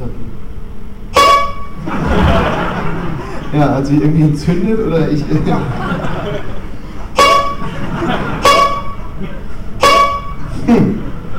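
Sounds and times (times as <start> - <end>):
steady noisy background: 0.0 - 11.3
short bright brassy horn honks: 1.1 - 1.9, 7.0 - 10.7
laughter: 1.8 - 3.8, 5.0 - 9.8, 10.4 - 11.3
speech: 3.6 - 6.5.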